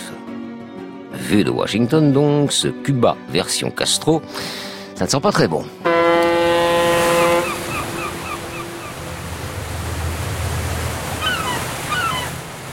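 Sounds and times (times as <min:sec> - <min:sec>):
speech: 0:01.3 - 0:06.0
cruise ship foghorn in a harbor in Cuba: 0:05.8 - 0:11.9
wind over harbor water: 0:05.8 - 0:12.7
gulls crying: 0:05.9 - 0:12.7.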